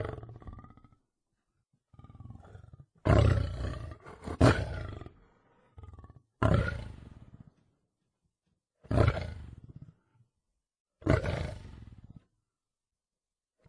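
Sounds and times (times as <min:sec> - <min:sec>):
lion giving gravelly roars: 0:00.0 - 0:01.0, 0:01.9 - 0:07.7, 0:08.8 - 0:10.1, 0:11.0 - 0:12.3.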